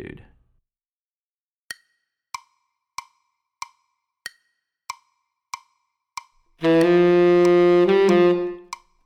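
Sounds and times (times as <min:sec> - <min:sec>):
tenor saxophone: 0:06.6 - 0:08.8.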